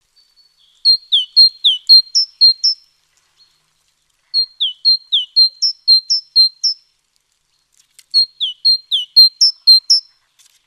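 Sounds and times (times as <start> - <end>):
great tit calling: 0.8 - 2.8, 4.4 - 6.8, 8.2 - 10.0.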